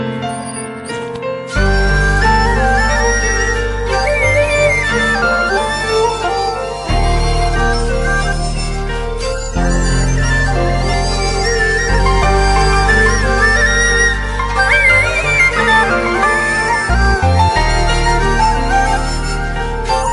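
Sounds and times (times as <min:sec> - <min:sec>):
instrumental flute ringtone: 0:00.1 - 0:20.1.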